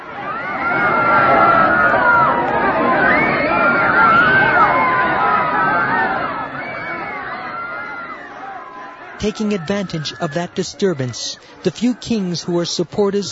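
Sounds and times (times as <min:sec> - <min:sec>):
large crowd roaring and howling: 0:00.0 - 0:13.2
speech: 0:09.2 - 0:13.2.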